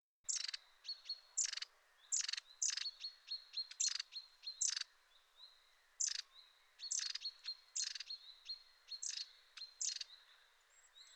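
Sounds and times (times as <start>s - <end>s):
long-tailed tit calls: 0.3s - 4.9s, 6.0s - 10.2s.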